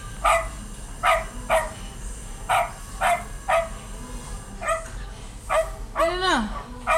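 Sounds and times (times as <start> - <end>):
small King Charles spaniel barking in short sharp yaps: 0.2 - 1.8, 2.5 - 3.8, 4.6 - 4.9, 5.5 - 6.9.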